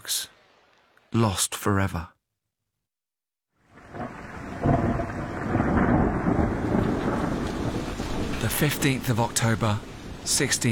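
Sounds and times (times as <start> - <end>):
speech: 1.1 - 2.2, 8.5 - 10.7
steady heavy rain: 3.6 - 10.7
deep rolling rumble of thunder: 3.7 - 10.7.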